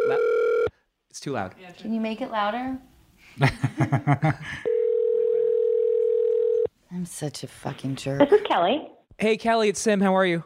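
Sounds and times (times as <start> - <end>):
telephone dial tone while placing a call: 0.0 - 0.7, 4.7 - 6.7
speech: 1.2 - 4.7, 6.9 - 10.4
laughter: 3.4 - 4.7.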